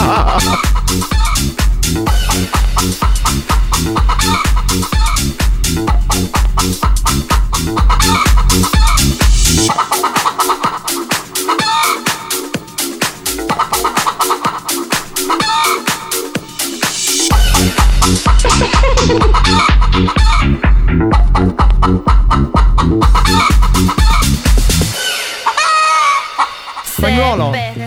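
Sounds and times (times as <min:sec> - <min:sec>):
hen clucks chopped into a house track: 0:00.0 - 0:27.0
laughter: 0:00.0 - 0:27.4
pounding house track with four-on-the-floor beat: 0:00.0 - 0:27.8.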